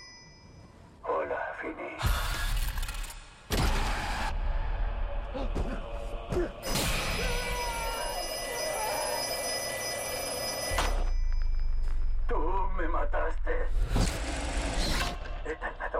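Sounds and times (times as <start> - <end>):
old-style telephone bell ringing: 0.0 - 0.8, 7.4 - 12.0
dark rumbling backdrop: 1.3 - 7.2, 11.1 - 15.9.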